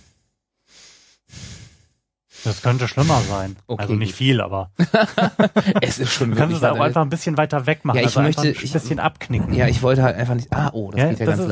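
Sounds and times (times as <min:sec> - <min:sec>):
breathy exhales blown into the microphone: 0:00.0 - 0:03.5
speech: 0:02.4 - 0:11.4
laughter: 0:04.8 - 0:07.1, 0:07.9 - 0:09.1.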